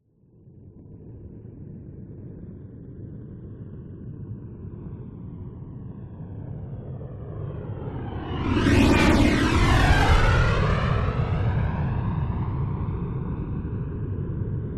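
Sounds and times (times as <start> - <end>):
A-10 Thunderbolt military jet flyby close, right to left: 5.4 - 14.6.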